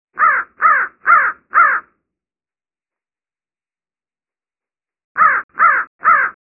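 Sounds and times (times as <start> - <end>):
turkey locator crow call: 0.2 - 1.9, 5.2 - 6.4.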